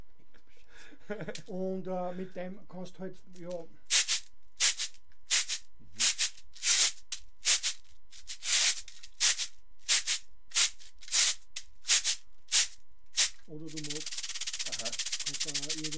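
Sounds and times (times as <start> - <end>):
speech: 1.1 - 3.8, 13.6 - 15.9
cabasa percussion instrument being shaken: 3.4 - 15.9.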